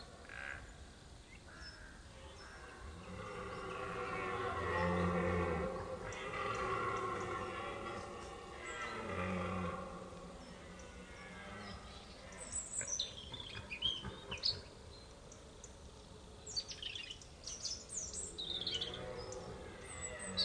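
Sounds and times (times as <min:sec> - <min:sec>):
faint background hiss: 0:00.0 - 0:20.4
red deer stag rutting bellow: 0:03.0 - 0:11.8.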